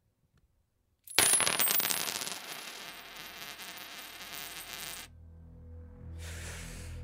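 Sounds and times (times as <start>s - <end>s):
handful of coins clattering into a container: 1.1s - 5.1s.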